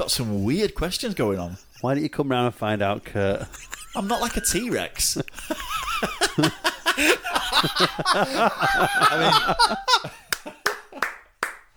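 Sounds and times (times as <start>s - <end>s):
speech: 0.0s - 10.2s
animated laughter and chuckling: 3.2s - 11.2s
sharp loud hand clapping: 10.1s - 11.7s.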